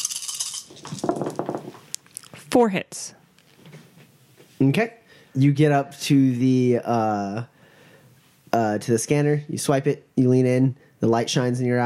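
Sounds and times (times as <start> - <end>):
handful of dice clattering as it is rolled: 0.0 - 1.9
speech: 2.5 - 3.2, 4.6 - 7.5, 8.5 - 11.8.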